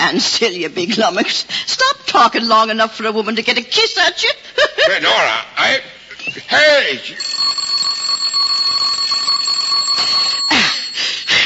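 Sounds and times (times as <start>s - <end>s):
speech: 0.0s - 7.5s
electric doorbell ringing: 7.2s - 11.4s.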